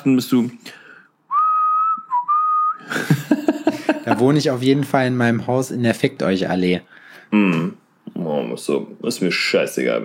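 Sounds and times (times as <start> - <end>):
speech: 0.0 - 0.8, 4.2 - 10.0
person whistling a tune while walking along a promenade: 1.3 - 2.9
laughter: 2.8 - 4.4.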